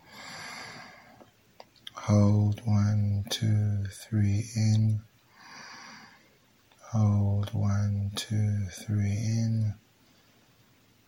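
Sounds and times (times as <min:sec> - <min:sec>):
deep breath drawn in through the nose during a relaxation breathing exercise: 0:00.0 - 0:01.2, 0:05.3 - 0:06.3
speech: 0:02.1 - 0:05.1, 0:06.9 - 0:09.8.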